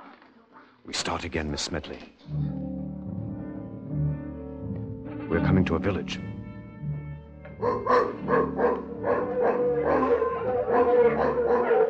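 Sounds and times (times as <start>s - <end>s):
speech: 0.8s - 2.6s, 5.3s - 6.3s, 7.6s - 9.2s
mongrel dogs barking and yelping in a village: 7.5s - 11.8s.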